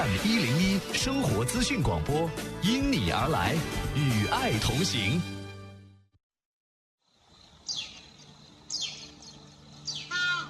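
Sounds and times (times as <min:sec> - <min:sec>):
speech: 0:00.2 - 0:05.4
steady outdoor hum: 0:07.1 - 0:10.4
crested ibis calling in the Qinling Mountains: 0:07.6 - 0:10.4.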